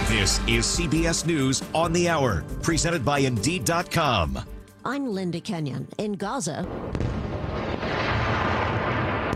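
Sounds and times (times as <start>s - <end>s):
speech: 0.1s - 7.1s
explosions from renewed fighting in Gaza: 6.7s - 9.3s.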